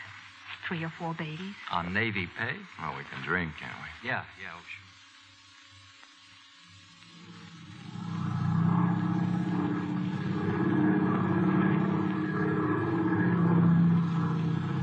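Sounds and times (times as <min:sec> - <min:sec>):
speech: 0:00.7 - 0:04.9
propeller airplane engine droning as it flies away: 0:07.7 - 0:14.8.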